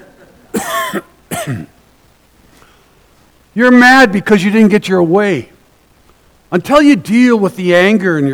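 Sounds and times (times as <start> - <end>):
man coughing: 0.5 - 1.8
speech: 0.9 - 1.8, 3.6 - 5.5, 6.5 - 8.3.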